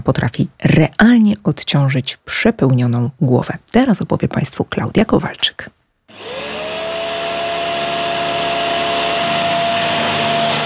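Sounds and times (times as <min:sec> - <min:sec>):
speech: 0:00.0 - 0:06.6
vacuum cleaner switching on and running: 0:06.1 - 0:10.6.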